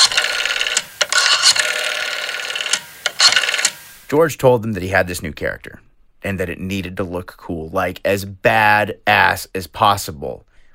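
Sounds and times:
rotary phone dial whirring and clicking: 0.0 - 3.9
speech: 4.1 - 10.5.

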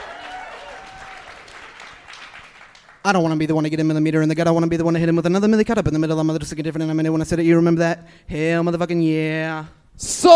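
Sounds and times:
audience at a live comedy show applauding and cheering: 0.0 - 3.0
speech: 3.0 - 10.3.

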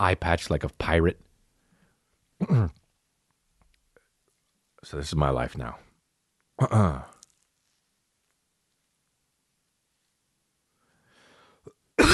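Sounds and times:
speech: 0.0 - 1.3, 2.4 - 2.8, 4.8 - 5.8, 6.6 - 7.2
loud harsh human cough: 2.4 - 2.8, 12.0 - 12.1.

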